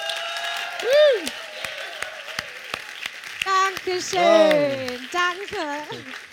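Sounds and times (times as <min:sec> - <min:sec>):
evening audience applauding to welcome a guest: 0:00.0 - 0:06.3
sharp claps: 0:00.0 - 0:06.3
person whooping: 0:00.1 - 0:02.0
speech: 0:00.8 - 0:01.4, 0:03.8 - 0:06.3.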